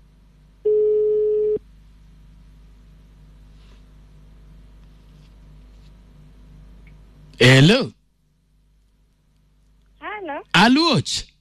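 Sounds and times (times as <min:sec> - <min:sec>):
faint low hum: 0:00.0 - 0:11.3
telephone line tone during a phone call: 0:00.7 - 0:01.6
speech: 0:07.4 - 0:08.0, 0:10.6 - 0:11.3.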